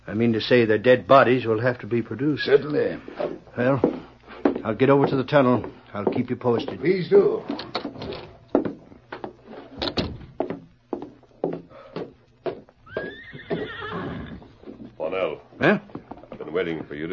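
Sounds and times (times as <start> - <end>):
speech: 0.1 - 7.7
hooves clopping: 2.3 - 17.1
saddled horse whinnying: 12.8 - 14.6.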